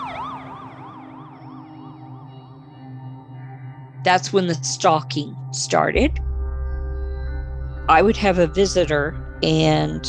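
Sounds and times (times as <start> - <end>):
fire truck siren wailing in rapid up-and-down sweeps: 0.0 - 2.2
speech: 4.0 - 6.2, 7.9 - 10.0
low rumbling fire truck engine: 6.0 - 10.0.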